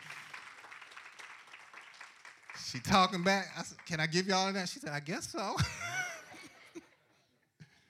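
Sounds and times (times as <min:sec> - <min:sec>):
audience clapping for guests: 0:00.0 - 0:05.5
speech: 0:02.6 - 0:06.0.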